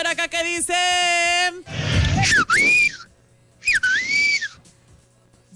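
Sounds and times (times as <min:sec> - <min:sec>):
speech: 0:00.1 - 0:02.8
wolf whistles given as votes: 0:01.7 - 0:03.1, 0:03.6 - 0:04.6.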